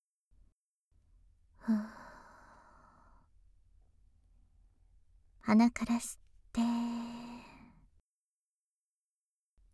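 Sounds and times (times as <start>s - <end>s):
speech: 1.6s - 1.9s, 5.5s - 6.7s
deep exhale emptying the lungs during a guided breathing exercise: 1.6s - 3.1s.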